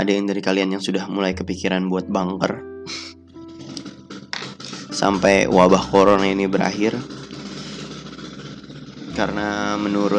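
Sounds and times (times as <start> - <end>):
speech: 0.0 - 3.2, 5.0 - 7.2, 9.2 - 10.1
motorcycle engine droning: 3.4 - 10.1.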